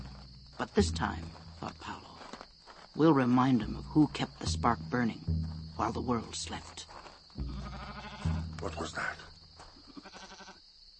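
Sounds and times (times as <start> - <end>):
speech: 0.6 - 2.1, 3.0 - 7.5, 8.2 - 9.3
goat bleating: 7.4 - 8.8, 9.8 - 10.6.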